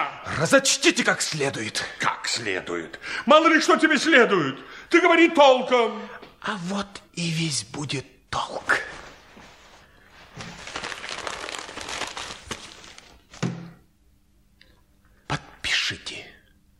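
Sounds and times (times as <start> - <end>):
speech: 0.4 - 8.8
paper certificate rustling and crinkling as it is handled: 8.9 - 13.5.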